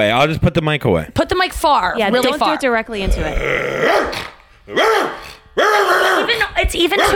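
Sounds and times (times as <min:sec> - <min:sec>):
speech: 0:00.0 - 0:07.1
person imitating a big dog barking: 0:03.3 - 0:07.1.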